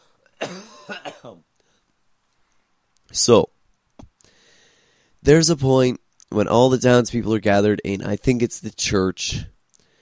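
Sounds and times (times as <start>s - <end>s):
person coughing: 0.4s - 1.4s
speech: 0.5s - 1.5s, 3.1s - 3.5s, 5.2s - 9.5s.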